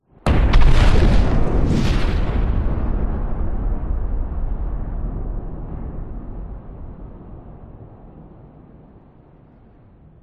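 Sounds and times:
large heavy designed explosion with shockwave: 0:00.1 - 0:08.2.

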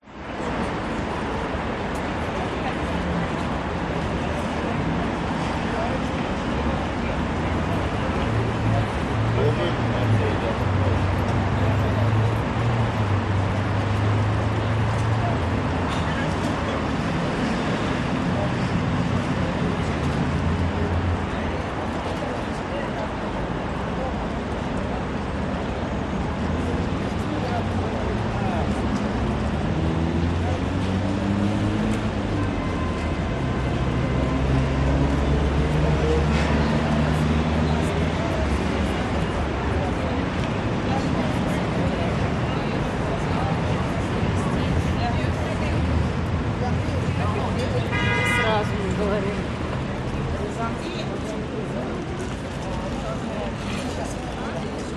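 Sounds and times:
heavy crowd with luggage at the main entrance of Kazanskiy train terminal in Moscow: 0:00.0 - 0:54.9.

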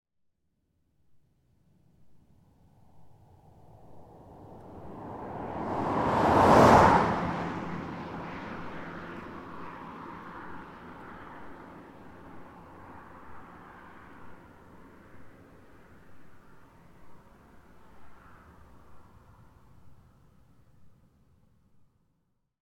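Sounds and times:
car approaching and passing fast on a country road: 0:03.0 - 0:19.4.

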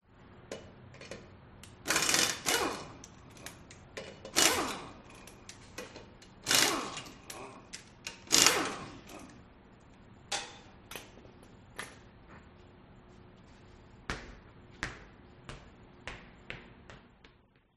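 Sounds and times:
industrial mechanic removing a car wheel: 0:00.5 - 0:09.4.

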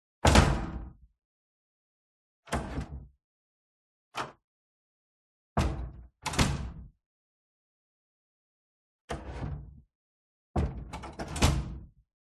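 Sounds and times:
heavy classroom door opening and closing: 0:00.2 - 0:00.8, 0:05.6 - 0:06.8, 0:09.1 - 0:09.8, 0:10.6 - 0:11.9.

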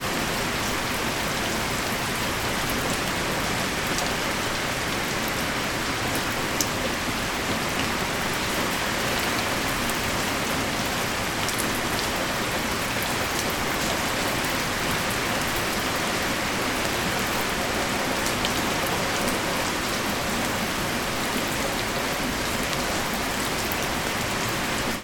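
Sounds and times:
medium light rain in a back yard: 0:00.0 - 0:25.0.

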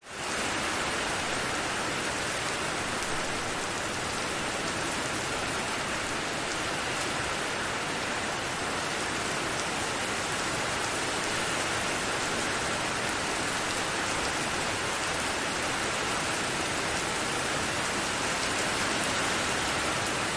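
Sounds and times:
medium heavy rain on street and roof in an industrial estate: 0:00.0 - 0:20.3.

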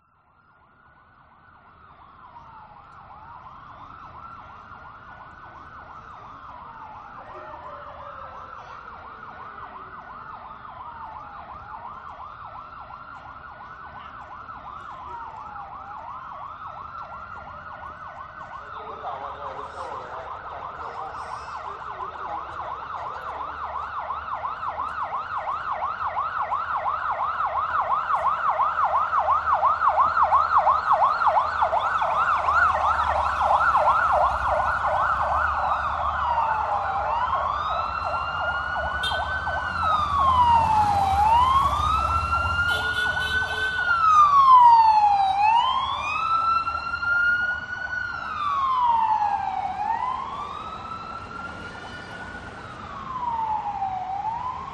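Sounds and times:
police sirens of a presidential motorcade escort in Vietnam: 0:00.0 - 0:54.7.

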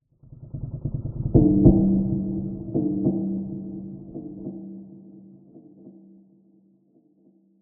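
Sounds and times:
distant muted low drum roll stinger: 0:00.4 - 0:04.7.

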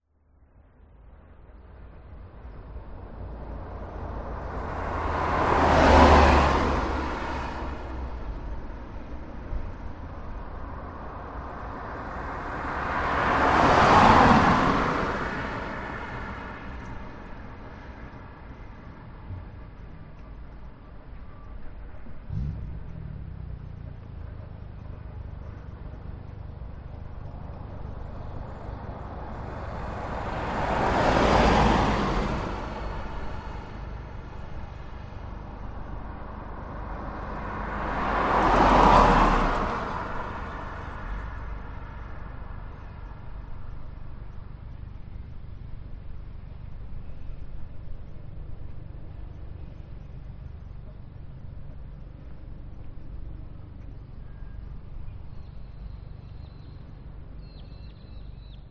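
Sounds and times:
traffic passing on a quiet day: 0:00.1 - 0:58.7.

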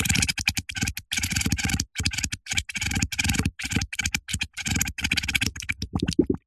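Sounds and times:
air blown from a straw onto wet mud making small bubbles: 0:00.1 - 0:06.4.

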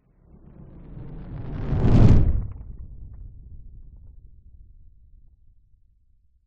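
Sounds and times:
large designed fireball passing by: 0:01.1 - 0:03.1.

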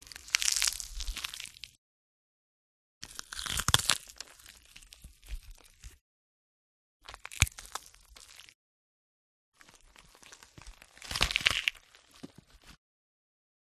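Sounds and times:
bell pepper being crushed and cracked: 0:00.0 - 0:01.8, 0:03.0 - 0:06.0, 0:07.0 - 0:08.6, 0:09.6 - 0:12.8.

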